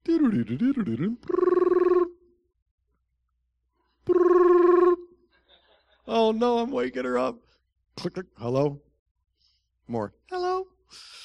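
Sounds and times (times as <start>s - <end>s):
speech: 0.2s - 1.5s, 6.1s - 8.8s, 9.9s - 11.2s
warbling electronic tone through a telephone line: 1.3s - 2.1s, 4.1s - 5.0s.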